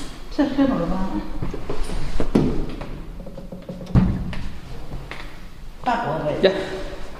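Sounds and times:
speech: 0.4s - 1.5s, 6.4s - 6.6s
door being opened: 2.4s - 4.5s.

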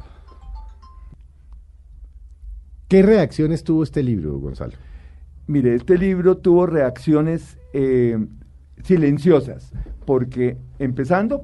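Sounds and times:
mobile phone ringtone of bright electronic notes: 0.0s - 1.2s
low room rumble: 0.0s - 11.4s
speech: 2.9s - 4.9s, 5.5s - 11.4s.

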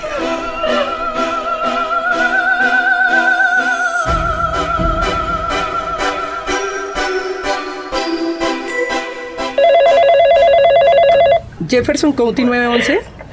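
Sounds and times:
sustained tense musical drone: 0.0s - 9.6s
high school library telephone ringing: 9.5s - 11.5s
speech: 11.7s - 13.1s.

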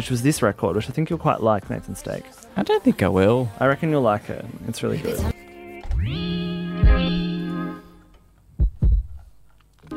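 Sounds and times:
speech: 0.0s - 5.3s
deep heartbeat thumps in a song intro: 6.8s - 7.3s, 8.5s - 9.4s.

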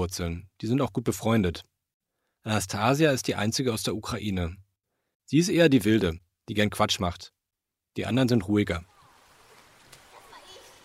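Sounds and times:
speech: 0.0s - 1.7s, 2.4s - 4.6s, 5.3s - 7.4s, 8.0s - 8.9s
steady wash of swimming pool water noise: 8.8s - 10.8s
children's voices faintly echoing at a swimming pool: 10.0s - 10.8s.

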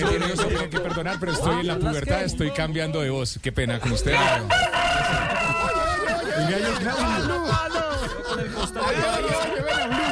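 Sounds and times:
laughter: 0.0s - 2.8s, 3.8s - 10.1s
speech: 0.4s - 5.6s
rooster crowing: 4.2s - 6.3s.

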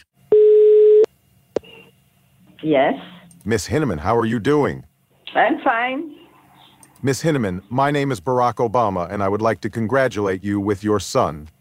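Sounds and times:
telephone line tone while calling someone back: 0.3s - 1.1s
speech: 2.6s - 6.2s, 7.0s - 11.5s.

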